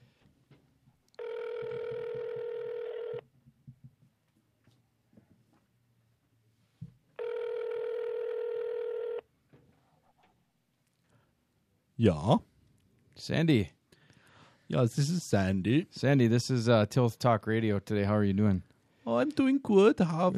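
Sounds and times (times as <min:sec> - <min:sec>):
faint low noise: 0:00.0 - 0:20.3
telephone line ringback tone: 0:01.2 - 0:03.2, 0:07.2 - 0:09.2
speech: 0:12.0 - 0:12.5, 0:13.2 - 0:13.8, 0:14.7 - 0:20.3.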